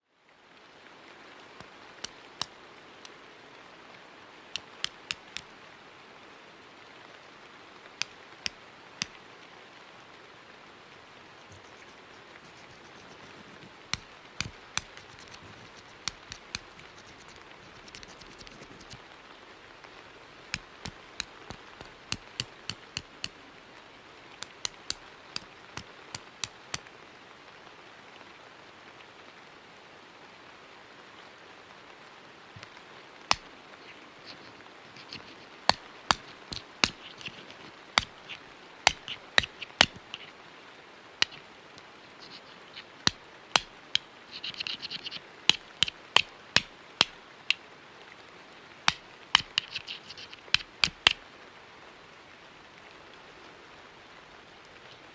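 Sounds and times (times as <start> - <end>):
flints of various sizes striking to start a fire in a cave: 4.6 - 5.5, 11.3 - 19.0, 20.5 - 23.4, 24.4 - 26.8, 34.2 - 40.3, 42.2 - 47.6, 48.9 - 51.2.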